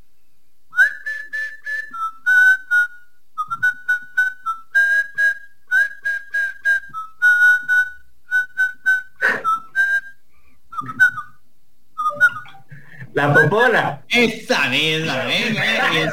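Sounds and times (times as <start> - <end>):
person whistling a tune: 0.7 - 11.4, 12.0 - 12.7
laughter: 13.0 - 13.8, 15.1 - 16.1
speech: 13.2 - 16.1.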